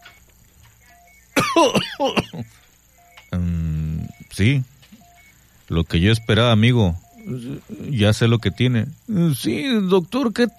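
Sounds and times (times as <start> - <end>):
harsh raspy coughs during stethoscope exam: 1.4 - 2.6
speech: 1.6 - 2.6, 4.4 - 4.7, 5.7 - 10.5.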